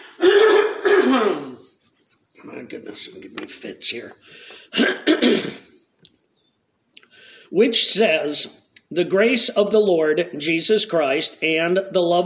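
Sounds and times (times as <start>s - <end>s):
man clearing his throat: 0.0s - 1.7s, 4.7s - 5.8s
speech: 1.1s - 1.6s, 2.4s - 5.7s, 7.5s - 12.2s.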